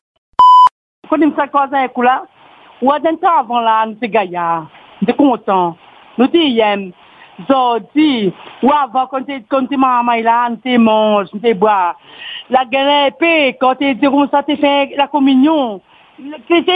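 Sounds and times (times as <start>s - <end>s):
short electronic answering machine cue beep: 0.4s - 0.7s
speech: 1.1s - 16.7s.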